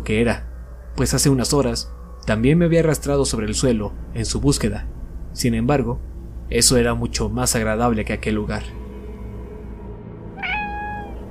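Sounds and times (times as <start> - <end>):
speech: 0.0 - 8.8
dull steady low rumble: 0.0 - 11.2
muffled cat meow: 10.4 - 11.2.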